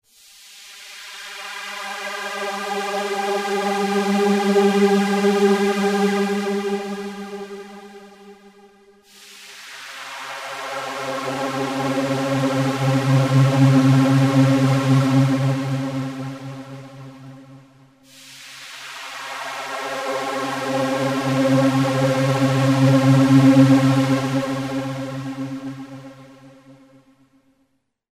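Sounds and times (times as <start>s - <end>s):
synthesizer high-pass sweep: 0.2s - 26.9s.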